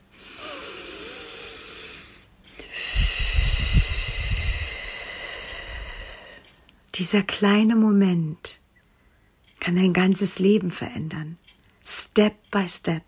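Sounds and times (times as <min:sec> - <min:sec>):
deep slow breath with soft low rushing exhale: 0:00.1 - 0:06.5
speech: 0:07.0 - 0:08.6, 0:09.7 - 0:13.0.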